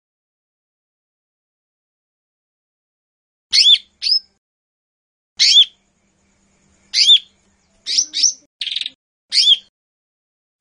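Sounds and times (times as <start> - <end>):
lesser green leafbird song: 3.5 - 4.4, 5.4 - 5.8, 6.6 - 9.7.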